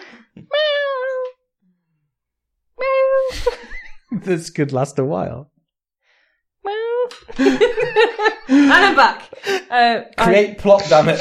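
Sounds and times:
person imitating a cat meowing: 0.4s - 1.4s, 2.8s - 3.3s, 6.6s - 7.2s
speech: 4.1s - 5.6s, 7.4s - 11.2s
laughter: 7.3s - 9.7s, 10.7s - 11.2s.

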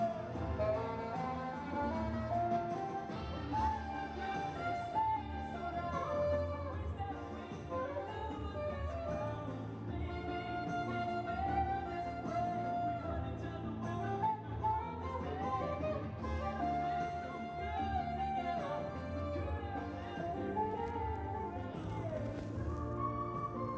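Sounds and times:
saxophone solo in a New York subway station: 0.0s - 23.7s.

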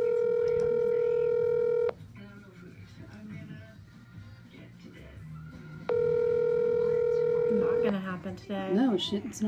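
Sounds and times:
phone call ringing on speakerphone: 0.0s - 2.0s, 5.9s - 8.1s
speech: 8.4s - 9.4s.

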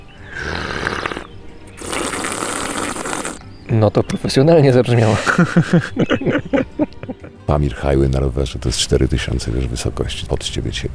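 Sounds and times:
man imitating a double slurp with his mouth: 0.3s - 3.5s
speech: 3.7s - 10.9s
laughter: 4.0s - 7.5s.

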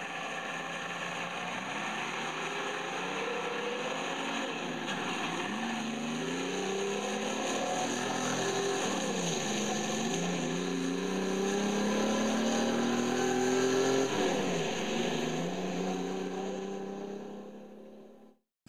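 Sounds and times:
car engine revving: 0.0s - 18.4s.

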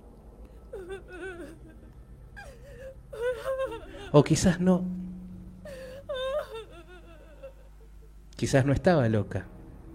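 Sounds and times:
faint low rumble: 0.0s - 9.9s
girl sobbing: 0.5s - 4.4s, 5.5s - 8.3s
speech: 4.1s - 5.0s, 8.4s - 9.5s.

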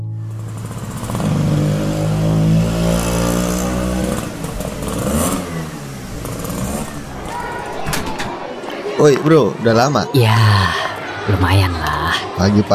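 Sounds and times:
motorcycle engine starting, idling and revving: 0.2s - 7.4s
speech: 9.0s - 12.7s.

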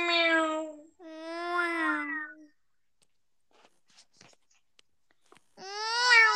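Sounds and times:
person imitating a cat meowing: 0.0s - 2.5s, 5.6s - 6.3s.

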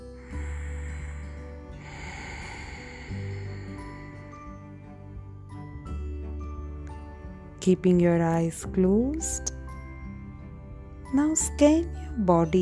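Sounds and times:
deep breathing through the throat: 0.0s - 5.7s
soft steady tonal drone: 0.0s - 6.6s
speech: 7.6s - 9.5s, 11.1s - 12.6s.

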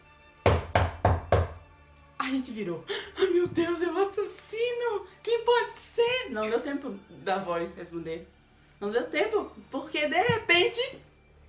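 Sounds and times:
firm knocks on a wooden door: 0.4s - 1.6s
speech: 2.3s - 11.1s.

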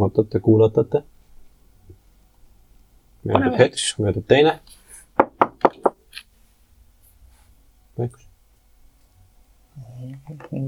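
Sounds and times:
speech: 0.0s - 1.1s, 3.2s - 4.8s, 8.0s - 8.2s, 10.0s - 10.6s
knocking on a door: 5.2s - 6.0s.

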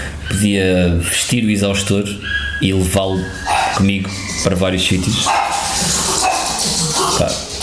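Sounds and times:
speech: 0.3s - 7.4s
dog barking: 3.5s - 3.8s, 5.2s - 7.2s.

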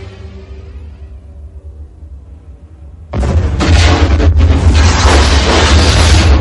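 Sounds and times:
deep rumble: 0.0s - 6.3s
crackling debris: 3.1s - 6.3s
loud explosion in an elevator shaft: 3.1s - 6.3s.

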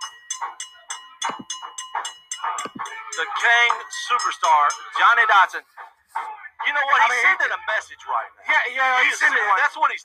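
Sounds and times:
wrestling ring bell clanging: 0.0s - 5.3s
speech: 3.2s - 5.8s, 6.7s - 10.0s.

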